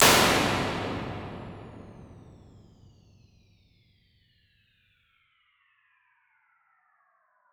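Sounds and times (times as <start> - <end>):
plate reverb impulse response: 0.0 - 2.9.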